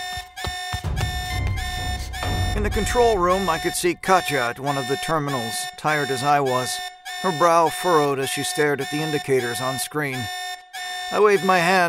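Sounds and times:
electronic alert alarm blaring through a station: 0:00.0 - 0:11.8
speech: 0:02.6 - 0:10.4, 0:11.1 - 0:11.8.

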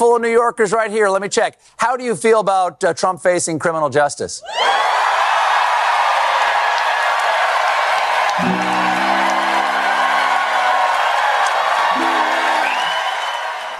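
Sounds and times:
speech: 0:00.0 - 0:05.2
whoops and shouts from the crowd: 0:04.4 - 0:07.3, 0:08.2 - 0:13.7
studio audience cheering and applauding: 0:04.5 - 0:13.7.

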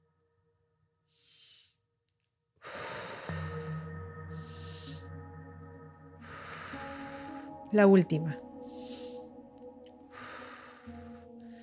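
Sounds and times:
deep forceful inhalation through nose and mouth during breathing exercise: 0:01.1 - 0:01.8, 0:02.6 - 0:05.2, 0:06.2 - 0:07.7, 0:08.6 - 0:09.4, 0:10.1 - 0:11.6
speech: 0:07.7 - 0:08.4.

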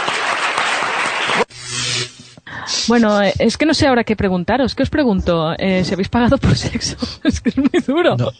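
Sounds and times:
audience applause: 0:00.0 - 0:01.5
speech: 0:02.9 - 0:08.3
laughter: 0:06.6 - 0:08.3.

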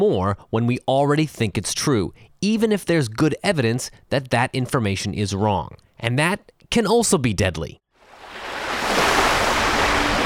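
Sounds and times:
speech: 0:00.0 - 0:07.8
ocean surf rushing in: 0:08.0 - 0:10.2.

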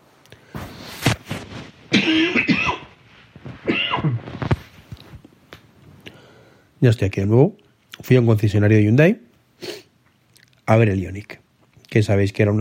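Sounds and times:
shuffling: 0:00.4 - 0:06.0
person coughing: 0:01.9 - 0:02.9, 0:03.6 - 0:04.3
speech: 0:06.8 - 0:09.7, 0:10.7 - 0:12.5.

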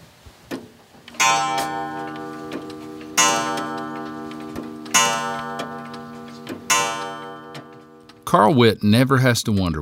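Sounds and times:
old clocks ticking in a home on a farm in West Virginia: 0:01.1 - 0:08.2
speech: 0:08.3 - 0:09.8.

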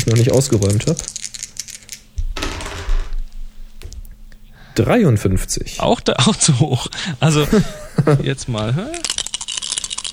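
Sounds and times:
speech: 0:00.0 - 0:01.2, 0:04.8 - 0:09.1
dice rolling across a hard tabletop: 0:00.6 - 0:03.3
laughter: 0:06.2 - 0:08.6.

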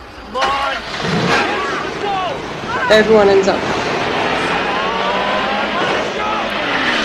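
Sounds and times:
indistinct voices: 0:00.2 - 0:07.0
car engine revving as the wheels spin without grip: 0:02.5 - 0:07.0
speech: 0:02.9 - 0:03.8.

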